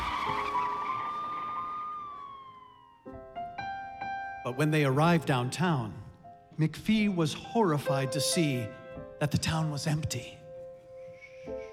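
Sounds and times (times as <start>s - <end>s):
squad car accelerating away with tire squeal: 0.0s - 3.0s
speech: 4.5s - 6.0s, 6.6s - 10.4s.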